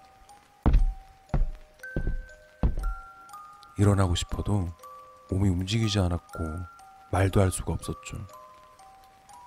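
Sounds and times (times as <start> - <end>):
heavy slow footsteps thudding: 0.7 - 3.1
speech: 3.8 - 8.4.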